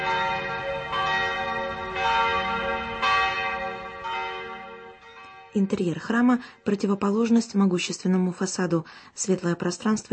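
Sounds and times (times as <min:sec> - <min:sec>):
church tower bells ringing on a fired-brick church: 0:00.0 - 0:06.6
speech: 0:05.5 - 0:10.1.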